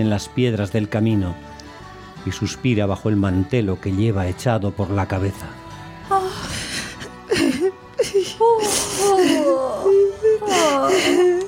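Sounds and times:
speech: 0.0s - 1.6s, 2.2s - 6.4s
voice performing a child crying and shivering from cold: 6.1s - 11.4s.

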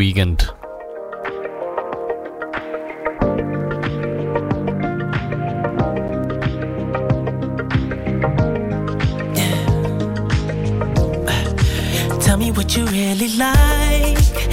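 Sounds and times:
speech: 0.0s - 0.6s, 12.7s - 14.5s
pop song intro on the radio: 0.7s - 14.5s
deep bass and steady beat: 3.2s - 13.0s, 13.6s - 14.5s.

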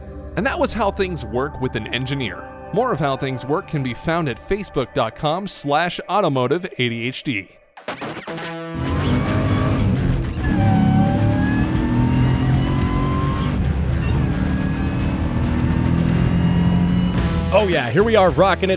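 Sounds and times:
speech: 0.4s - 8.9s, 17.5s - 18.7s
rising supercharger whine of V8 engine: 8.8s - 17.3s
supercharged V8-swapped Volvo 240 engine revving and accelerating: 8.8s - 17.5s.

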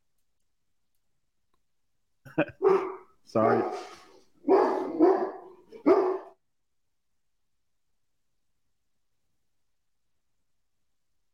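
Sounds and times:
speech: 2.4s - 4.0s
pet dog barking: 2.6s - 6.4s.

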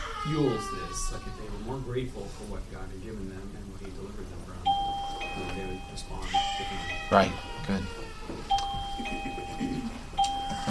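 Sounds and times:
speech: 0.2s - 9.8s
doorbell chiming: 4.7s - 7.5s, 8.5s - 10.6s.

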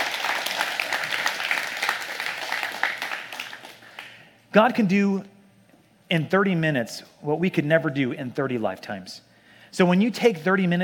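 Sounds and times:
crowd applauding: 0.0s - 4.2s
speech: 4.5s - 5.3s, 6.1s - 10.8s.

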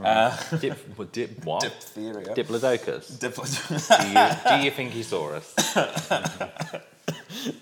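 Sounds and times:
speech: 0.0s - 7.5s
laughter: 3.5s - 4.8s, 5.6s - 7.4s
person coughing: 3.9s - 4.7s, 5.6s - 7.5s.

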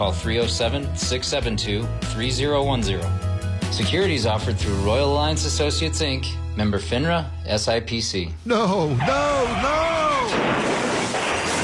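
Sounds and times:
speech: 0.0s - 9.8s
car crash sound effect: 9.4s - 11.6s.

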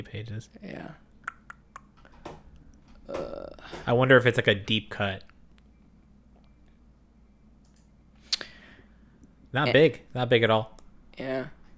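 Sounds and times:
speech: 0.0s - 1.1s, 3.1s - 5.3s, 9.5s - 11.6s
computer mouse clicking on a link: 7.6s - 7.9s.

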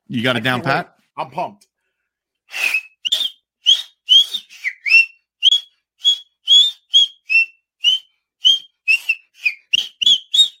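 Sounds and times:
speech: 0.1s - 1.7s, 2.5s - 2.8s
person whistling a chant-like sports fan tune: 2.5s - 10.5s.

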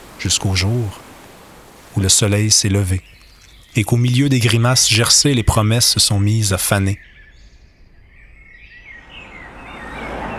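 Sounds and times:
birds singing in high wavering chirps: 0.0s - 10.3s
constant hiss: 0.0s - 10.3s
speech: 0.2s - 1.1s, 2.0s - 7.2s.

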